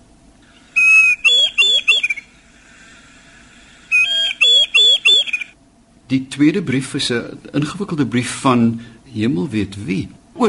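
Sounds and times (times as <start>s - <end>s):
Christmas bird Kersfoeltjie whistled call: 0.5s - 2.4s, 3.9s - 5.6s
speech: 6.1s - 10.4s.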